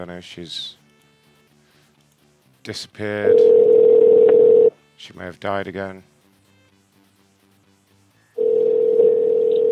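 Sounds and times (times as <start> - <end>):
speech: 0.0 - 0.8, 2.6 - 3.7, 5.0 - 6.1
steady electronic telephone line ringing tone: 3.3 - 4.7, 8.4 - 9.7.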